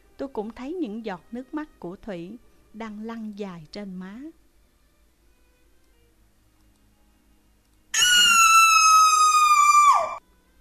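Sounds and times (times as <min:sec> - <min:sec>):
speech: 0:00.2 - 0:04.4
woman screaming: 0:08.0 - 0:10.2.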